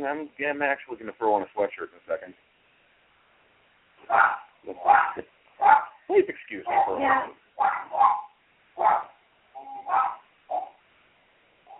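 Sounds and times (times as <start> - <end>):
speech: 0.0 - 2.5, 4.0 - 9.2, 9.9 - 10.7
dog barking: 4.1 - 6.0, 6.7 - 10.8.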